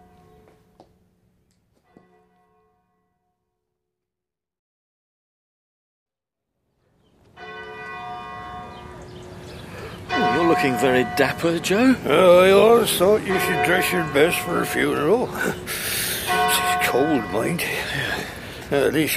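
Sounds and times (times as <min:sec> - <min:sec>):
church bells ringing: 0:00.0 - 0:01.1, 0:01.8 - 0:03.4, 0:07.3 - 0:19.1
speech: 0:10.6 - 0:18.0, 0:18.7 - 0:19.1.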